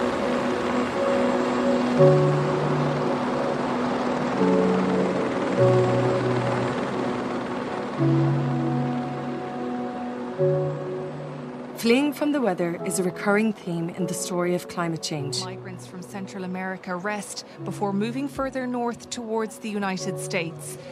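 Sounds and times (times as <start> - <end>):
helicopter flying: 0.0 - 20.9
speech: 2.0 - 2.4, 12.2 - 20.9.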